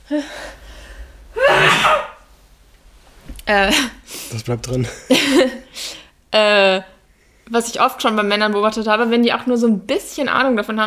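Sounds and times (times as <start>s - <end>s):
speech: 0.1s - 0.6s, 3.5s - 6.9s, 7.5s - 10.8s
person sneezing: 1.4s - 2.2s.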